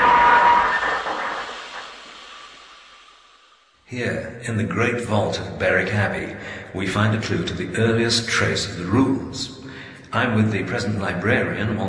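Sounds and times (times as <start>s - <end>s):
train brakes squealing after emergency stop: 0.0s - 2.4s
train brakes rushing hiss: 0.0s - 3.8s
speech: 3.9s - 11.8s.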